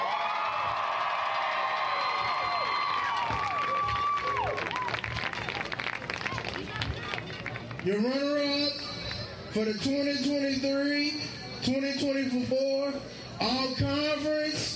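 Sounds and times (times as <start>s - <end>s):
crowd clapping at a middle school game: 0.0s - 7.9s
speech: 7.8s - 8.8s, 9.5s - 14.7s.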